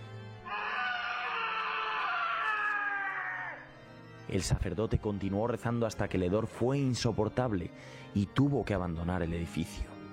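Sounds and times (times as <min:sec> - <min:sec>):
man's agonized scream: 0:00.4 - 0:03.7
speech: 0:04.3 - 0:09.9.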